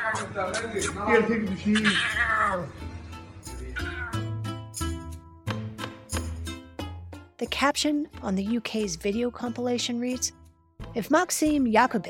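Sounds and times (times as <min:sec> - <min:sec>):
lion cub meowing: 0:00.0 - 0:00.4, 0:01.5 - 0:02.8, 0:03.7 - 0:04.5
steady rhythmic music: 0:00.0 - 0:09.2
speech: 0:00.1 - 0:03.0, 0:07.4 - 0:12.0.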